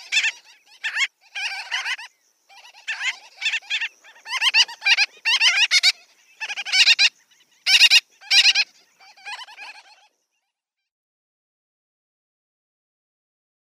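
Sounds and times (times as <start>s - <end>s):
gull-billed tern calling: 0.0s - 10.5s.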